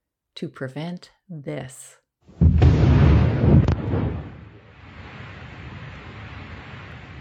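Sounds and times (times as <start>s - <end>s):
speech: 0.4s - 2.0s
undersea mine explosion during the Second World War: 2.3s - 7.1s.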